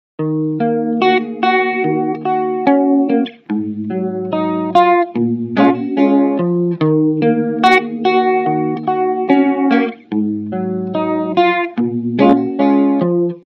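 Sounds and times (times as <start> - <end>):
warm wet guitar with univibe-like effect: 0.2 - 13.4.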